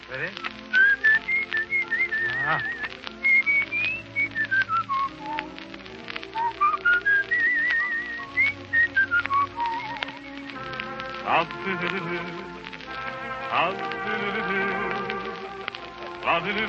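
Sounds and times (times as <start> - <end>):
soft accompaniment: 0.0 - 16.6
speech: 0.1 - 0.6, 2.5 - 2.8, 11.6 - 12.5, 13.5 - 14.9, 16.2 - 16.6
person whistling a lively melody: 0.7 - 5.6, 6.3 - 10.5.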